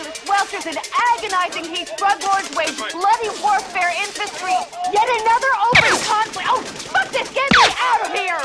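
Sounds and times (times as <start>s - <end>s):
speech: 0.5s - 8.4s
gunfire in a film street gun battle between drug dealers and a SWAT team: 7.5s - 8.1s.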